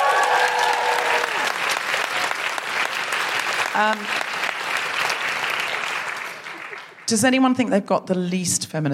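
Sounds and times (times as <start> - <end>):
people whooping: 0.0 - 2.4
audience applause from a sizable crowd: 0.0 - 7.1
speech: 3.8 - 4.2, 7.1 - 8.9.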